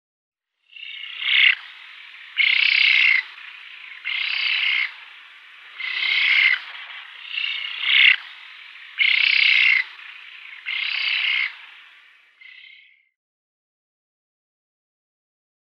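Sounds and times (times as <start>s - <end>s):
Eurasian spoonbill uttering hoarse buzzy rasping calls: 0.7s - 13.0s
steady hiss: 0.8s - 12.5s.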